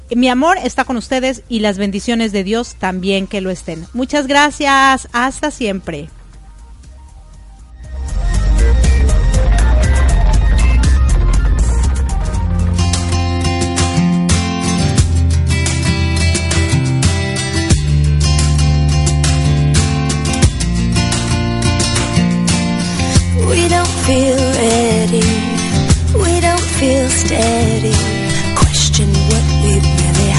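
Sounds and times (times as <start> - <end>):
speech: 0.1 - 6.2
instrumental song intro with sustained chords, rhythmic pulse and strong bass: 6.1 - 30.3.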